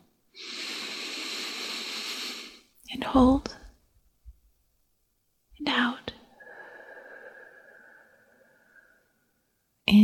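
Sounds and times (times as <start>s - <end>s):
person breathing in slowly and deeply during a guided relaxation exercise: 0.4s - 2.7s, 6.3s - 9.3s
speech: 3.0s - 3.6s.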